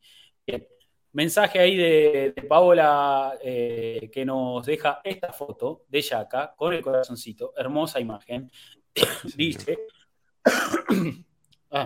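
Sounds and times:
speech: 0:00.5 - 0:11.8
harsh throaty rasping coughs: 0:09.0 - 0:09.8, 0:10.5 - 0:11.3.

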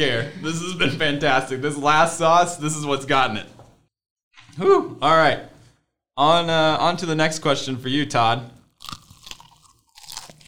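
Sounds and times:
speech: 0:00.0 - 0:03.6, 0:04.6 - 0:05.5, 0:06.2 - 0:09.0
person biting into crunchy food: 0:08.7 - 0:10.4.

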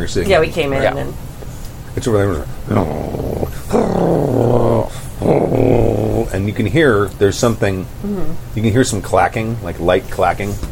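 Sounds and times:
speech: 0:00.0 - 0:01.3, 0:02.0 - 0:10.7
dog growling by a door: 0:02.6 - 0:06.4.

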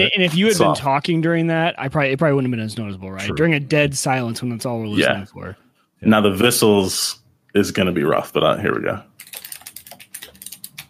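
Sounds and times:
speech: 0:00.0 - 0:09.4
clicky mechanical keyboard typing: 0:09.2 - 0:10.8.

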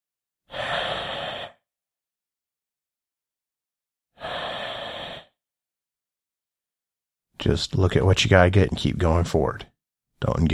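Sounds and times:
heavy loud rough breaths from someone behind the listener: 0:00.5 - 0:01.7, 0:04.2 - 0:05.4
speech: 0:07.4 - 0:10.5.

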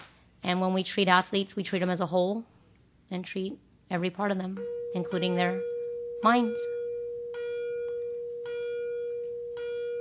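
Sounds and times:
speech: 0:00.5 - 0:02.5, 0:03.1 - 0:06.8
bell ringing: 0:04.6 - 0:09.9.

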